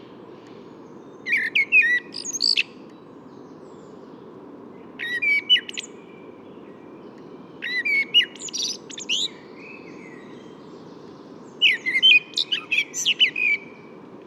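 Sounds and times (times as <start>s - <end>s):
common blackbird singing at Bois de Vincennes: 0.9s - 4.2s, 4.9s - 14.0s.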